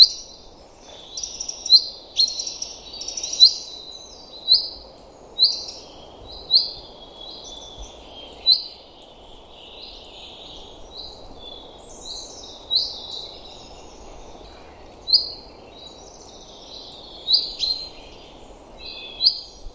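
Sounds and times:
common chaffinch calls: 0.0 - 4.8, 5.4 - 19.7.

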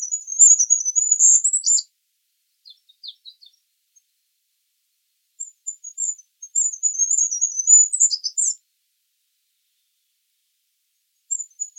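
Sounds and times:
small bird twittering: 0.0 - 1.8, 2.6 - 3.6, 5.4 - 8.6, 11.3 - 11.7.

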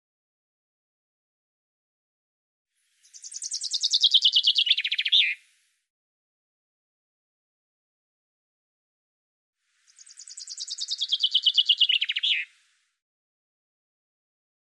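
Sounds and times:
Common chaffinch song: 2.8 - 5.8, 9.7 - 13.0.

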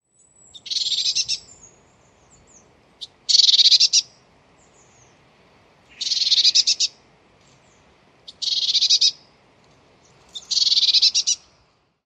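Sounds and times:
bird rattling calls: 0.5 - 1.7, 3.0 - 4.1, 5.9 - 7.0, 8.3 - 9.2, 10.1 - 11.5.

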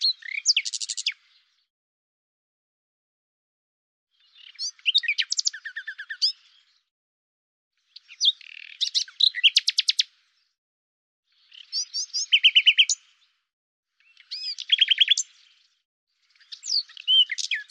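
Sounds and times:
common nightingale song: 0.0 - 1.6, 4.1 - 6.8, 7.8 - 10.2, 11.3 - 13.3, 14.0 - 17.6.

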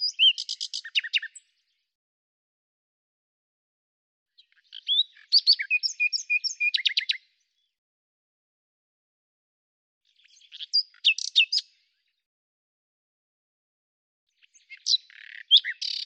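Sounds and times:
common nightingale singing: 0.0 - 1.5, 4.4 - 7.3, 10.2 - 11.8, 14.4 - 16.0.

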